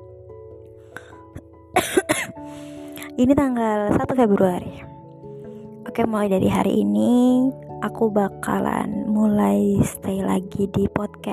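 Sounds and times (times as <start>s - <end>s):
speech: 1.8s - 2.1s, 3.2s - 4.9s, 6.0s - 11.3s
person coughing downstairs: 1.8s - 2.4s.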